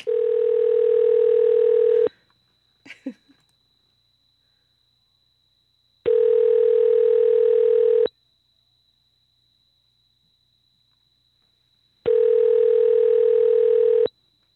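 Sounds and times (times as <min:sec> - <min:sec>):
steady electronic telephone tone: 0:00.0 - 0:02.1, 0:06.1 - 0:08.1, 0:12.1 - 0:14.1.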